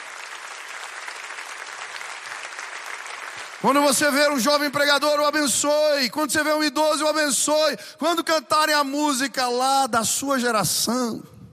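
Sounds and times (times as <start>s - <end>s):
crowd of people applauding: 0.0s - 4.4s
speech: 3.6s - 11.3s.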